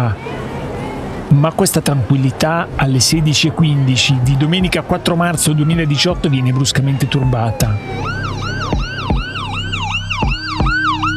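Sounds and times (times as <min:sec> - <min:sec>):
speech: 0:00.0 - 0:00.3, 0:01.3 - 0:08.2
low traffic rumble: 0:00.0 - 0:11.1
loud ambulance siren wailing: 0:03.4 - 0:11.1.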